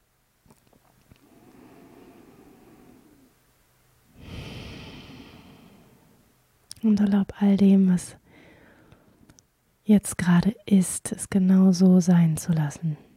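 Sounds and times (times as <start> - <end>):
deep breathing in and out: 1.2 - 3.4, 4.1 - 6.4, 8.2 - 9.3
speech: 6.8 - 8.2, 9.9 - 13.1.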